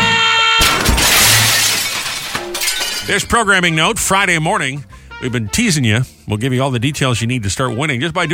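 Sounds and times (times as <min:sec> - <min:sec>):
glass shattering: 0:00.6 - 0:03.4
tinkling shards and debris: 0:01.2 - 0:03.4
speech: 0:03.1 - 0:08.3.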